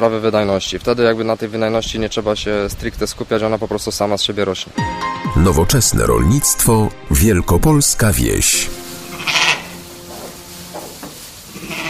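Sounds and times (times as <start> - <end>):
speech: 0.0 - 9.4
merino and Romanov sheep bleating at Pawłowice in Wielkopolska Poland: 9.1 - 9.8, 11.5 - 11.8.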